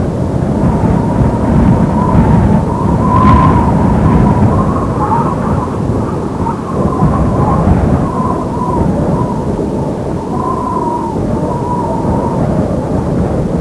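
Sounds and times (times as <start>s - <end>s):
blazing wind: 0.0s - 13.5s.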